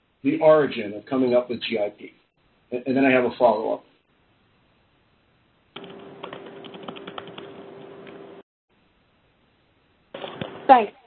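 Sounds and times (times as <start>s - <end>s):
faint steady hum: 0.0s - 11.0s
speech: 0.2s - 3.9s, 10.7s - 11.0s
typing on a computer keyboard: 5.8s - 8.2s.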